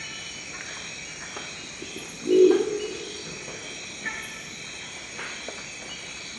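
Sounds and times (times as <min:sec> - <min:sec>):
background hiss: 0:00.0 - 0:06.3
crested owl croak: 0:01.8 - 0:03.5.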